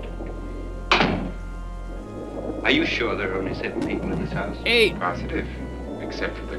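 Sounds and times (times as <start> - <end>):
door swinging shut with a solid thunk: 0.9 - 1.4
speech: 2.6 - 6.5.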